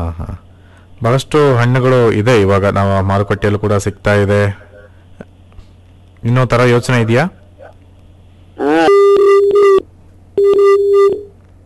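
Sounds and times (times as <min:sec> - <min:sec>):
speech: 0:00.0 - 0:00.4, 0:01.0 - 0:04.6, 0:06.2 - 0:07.4, 0:08.6 - 0:09.6, 0:10.5 - 0:11.3
telephone busy signal from a farm call-in line: 0:08.7 - 0:09.8, 0:10.4 - 0:11.3.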